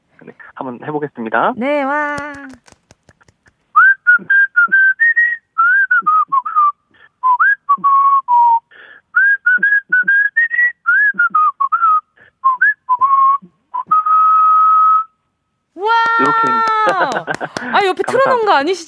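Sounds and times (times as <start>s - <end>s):
speech: 0.2s - 2.8s, 4.2s - 4.4s, 17.9s - 18.8s
person whistling a melody: 3.8s - 15.2s
laughter: 15.9s - 18.6s.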